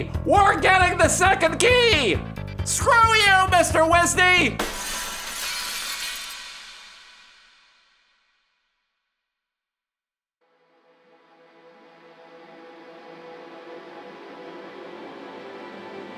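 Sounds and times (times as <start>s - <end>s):
speech: 0.0s - 5.0s
window glass shattering: 4.6s - 6.9s.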